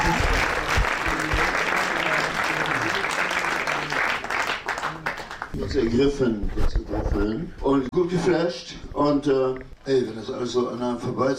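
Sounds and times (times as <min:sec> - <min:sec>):
audience applause: 0:00.0 - 0:05.6
speech: 0:05.6 - 0:11.3.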